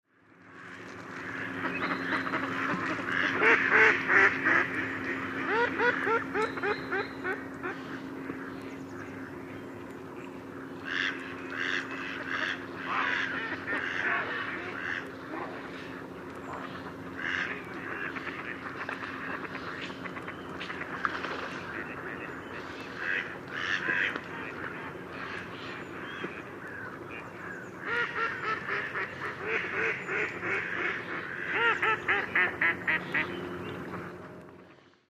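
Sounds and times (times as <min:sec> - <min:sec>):
mallard duck: 0:01.2 - 0:09.2, 0:10.8 - 0:15.6, 0:16.5 - 0:33.3.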